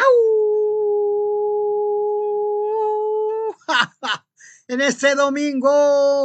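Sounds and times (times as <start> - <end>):
person imitating a wolf-like howl: 0.0 - 3.7
speech: 3.8 - 6.2.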